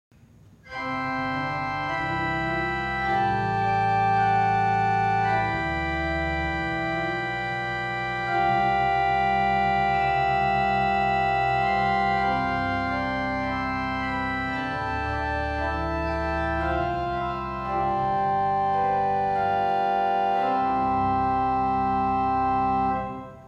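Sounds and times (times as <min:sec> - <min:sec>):
organ principal stop ensemble: 0:00.5 - 0:23.4.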